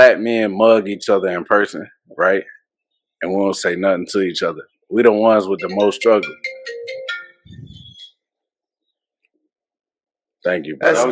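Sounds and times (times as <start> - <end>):
speech: 0.0 - 2.6, 3.2 - 6.9, 10.4 - 11.1
duty mobile phone ringtone with bright electronic tones: 5.6 - 8.0.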